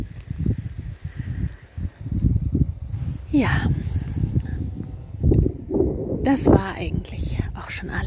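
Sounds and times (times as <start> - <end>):
rustling leaves: 0.0 - 5.7
gusty wind rumbling and buffeting outdoors: 0.0 - 8.0
speech: 3.3 - 3.8, 6.3 - 8.0.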